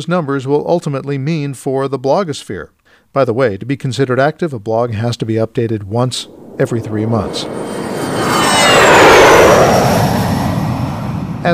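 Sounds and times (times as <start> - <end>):
speech: 0.0 - 8.2
jet aircraft roaring overhead with high downward-sliding whine: 6.0 - 11.5.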